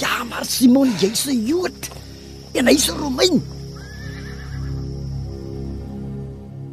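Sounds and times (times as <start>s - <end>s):
speech: 0.0s - 2.0s, 2.6s - 3.6s
horse whinnying: 3.8s - 4.8s.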